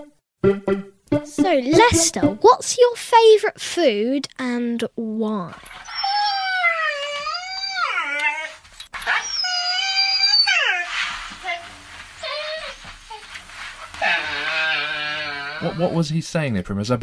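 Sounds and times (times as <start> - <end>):
speech: 0.0 - 5.9, 15.6 - 17.0
dog howling and whining: 5.7 - 15.8.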